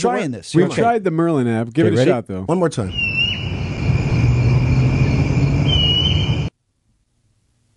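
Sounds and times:
speech: 0:00.0 - 0:03.2
crickets chirping: 0:02.9 - 0:06.5.

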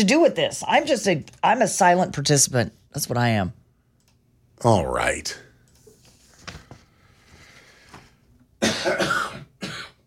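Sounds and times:
speech: 0:00.0 - 0:03.6, 0:04.6 - 0:05.4, 0:08.8 - 0:09.2
sick person coughing into a microphone: 0:08.6 - 0:10.0.

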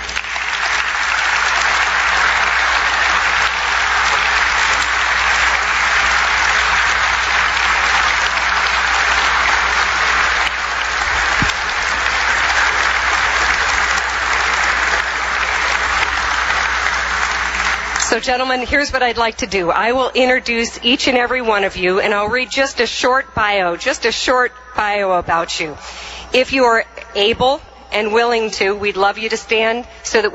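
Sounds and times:
loud applause from a large audience: 0:00.0 - 0:18.4
speech: 0:18.2 - 0:30.3.

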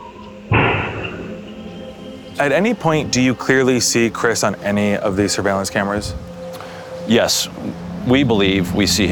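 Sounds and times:
steady hum: 0:00.0 - 0:09.1
single sharp gunshot with broad echo: 0:00.5 - 0:01.4
speech: 0:02.4 - 0:06.3, 0:07.1 - 0:09.1.

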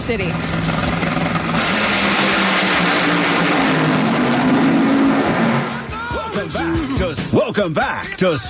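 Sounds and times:
dragster engine roaring down the track: 0:00.0 - 0:07.1
speech: 0:00.1 - 0:01.0, 0:06.4 - 0:08.4.

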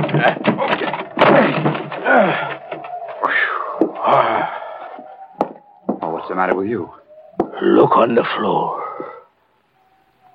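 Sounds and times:
wooden door on a scow forced open in the snow: 0:00.0 - 0:04.2, 0:05.3 - 0:06.8
speech: 0:00.2 - 0:00.6, 0:06.4 - 0:07.0, 0:07.6 - 0:08.8.

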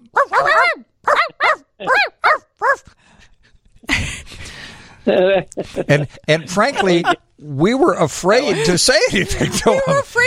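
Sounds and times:
voice imitating a car that barks like a dog: 0:00.0 - 0:02.8
laughter: 0:01.2 - 0:02.1, 0:03.9 - 0:07.3, 0:08.2 - 0:10.2
speech: 0:05.1 - 0:10.2.

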